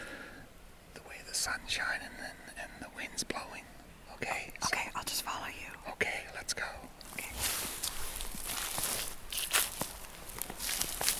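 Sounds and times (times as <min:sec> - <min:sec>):
speech: 0:01.5 - 0:07.8
footsteps walking through a forest on the woodland floor: 0:07.0 - 0:11.1.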